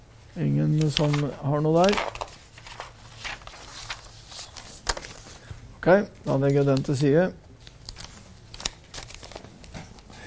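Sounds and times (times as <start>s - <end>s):
speech: 0.4s - 2.2s, 5.8s - 7.4s
paper pages being turned: 0.7s - 5.5s, 7.6s - 10.0s.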